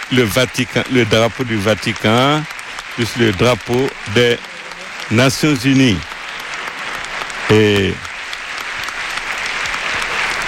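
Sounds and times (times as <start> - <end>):
large audience applause during a papal visit: 0.0 - 10.4
speech: 0.1 - 4.5, 5.1 - 6.1, 7.5 - 8.0.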